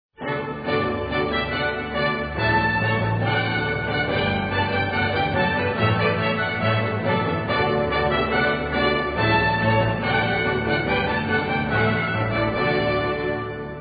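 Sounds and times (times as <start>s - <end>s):
prelude music: 0.2s - 13.8s.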